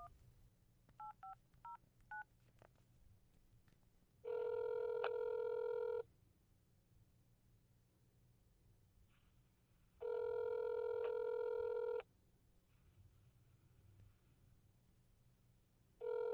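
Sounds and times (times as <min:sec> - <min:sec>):
telephone ringing tone: 0:04.3 - 0:06.0, 0:10.0 - 0:12.0, 0:16.0 - 0:16.3.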